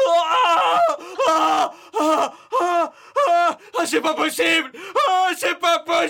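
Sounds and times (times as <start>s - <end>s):
person crying out loudly: 0.0s - 3.6s
speech: 3.9s - 6.0s.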